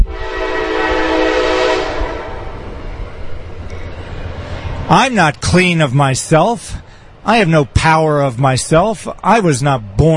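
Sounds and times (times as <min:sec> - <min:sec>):
New York train horn: 0:00.0 - 0:02.8
New York train rumbling and clattering past: 0:00.0 - 0:10.0
speech: 0:04.9 - 0:10.1.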